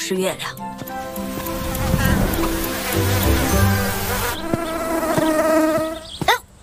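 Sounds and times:
speech: 0.1 - 0.7
large mosquitoes buzzing: 0.9 - 6.2.

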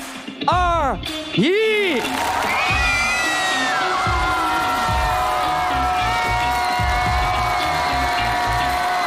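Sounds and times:
rhythmic low thumps: 0.0 - 9.0
speech: 0.5 - 2.5
large audience screaming and cheering for a dance team at a competition: 1.8 - 9.0.

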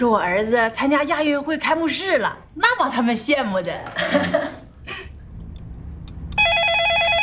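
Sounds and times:
speech: 0.0 - 4.4
phone ringing with an electronic trill: 6.4 - 7.2.

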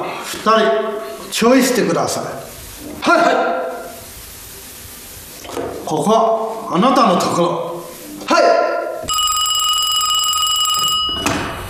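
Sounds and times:
speech: 0.4 - 3.6, 5.9 - 7.7, 8.3 - 8.6
telephone ringing with a bright bell-like tone: 9.1 - 11.6.

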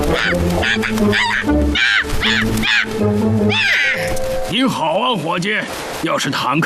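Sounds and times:
raven cawing: 0.0 - 4.3
speech: 0.2 - 6.6.

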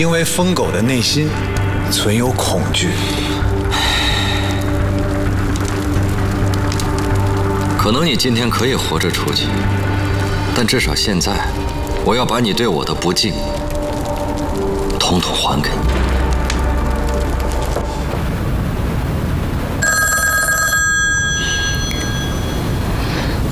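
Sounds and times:
loud dense noise and rumble: 0.0 - 23.5
telephone electronic ringtone: 19.8 - 22.9.

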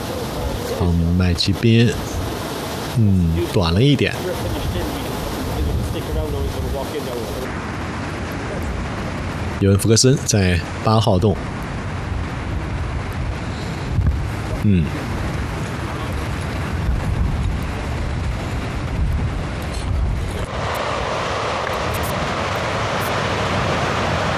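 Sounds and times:
Atlantic ocean waves washing: 0.0 - 24.3
strong wind roaring across the microphone: 0.0 - 24.3
speech: 0.8 - 2.2, 3.0 - 5.1, 6.0 - 7.7, 9.6 - 11.6, 14.6 - 15.1.

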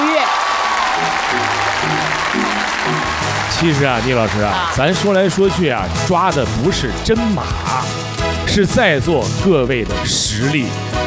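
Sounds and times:
audience applauding an actor: 0.0 - 6.0
speech: 3.6 - 11.0.

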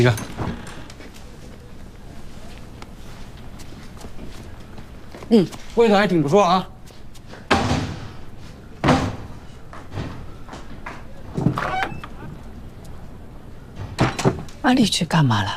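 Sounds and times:
speech: 0.0 - 0.3, 5.3 - 6.7, 14.7 - 15.5
door being shut and locked: 0.0 - 1.0, 7.5 - 8.2, 8.8 - 12.4, 13.7 - 14.6.

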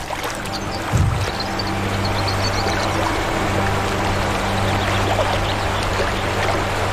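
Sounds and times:
rushing river water: 0.0 - 6.9
deep thump: 0.9 - 1.6.

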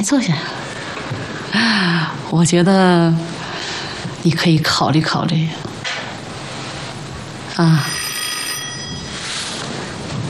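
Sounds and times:
speech: 0.0 - 3.3, 4.2 - 5.7, 7.6 - 8.0
telephone ringing: 7.7 - 9.6.

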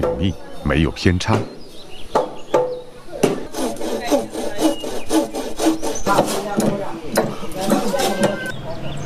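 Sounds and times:
speech: 0.2 - 1.6
hammering joints of a wooden house frame: 2.2 - 8.4.

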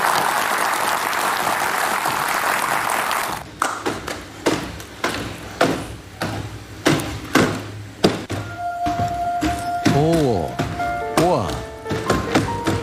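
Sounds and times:
crowd applauding: 0.0 - 3.8
rhythmic thumps: 3.4 - 12.8
melodic waltz tune: 8.4 - 12.8.

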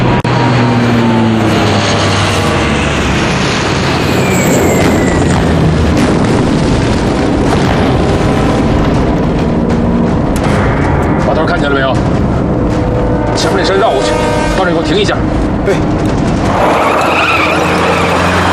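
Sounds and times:
military plane engine roaring low overhead: 0.0 - 18.4.

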